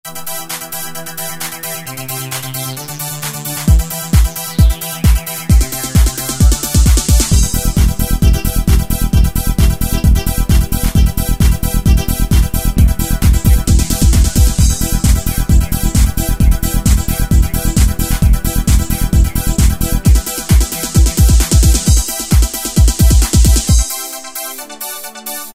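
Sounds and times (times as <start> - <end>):
Euro techno preset style music: 0.1 - 25.5.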